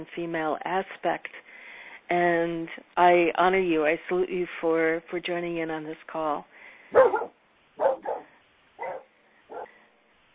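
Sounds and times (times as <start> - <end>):
speech: 0.0 - 1.5, 2.1 - 7.9
male dog barking: 6.9 - 9.8.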